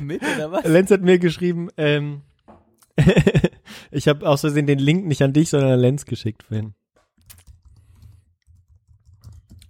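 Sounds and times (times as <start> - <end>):
speech: 0.1 - 2.3, 3.0 - 7.4
laughter: 3.0 - 3.6
typing on a computer keyboard: 7.2 - 9.6.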